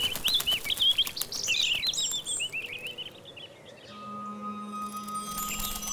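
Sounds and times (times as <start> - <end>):
birds flapping wings: 0.0 - 3.2, 5.0 - 5.9
several birds chirping: 0.0 - 4.0, 4.8 - 5.9.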